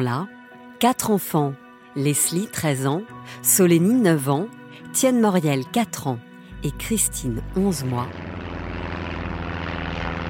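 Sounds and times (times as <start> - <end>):
speech: 0.0 - 8.3
small Cessna 206 propeller plane engine droning: 6.8 - 10.2.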